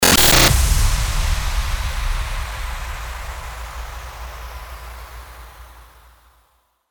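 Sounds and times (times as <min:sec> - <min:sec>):
starter impact sound effect: 0:00.0 - 0:06.4.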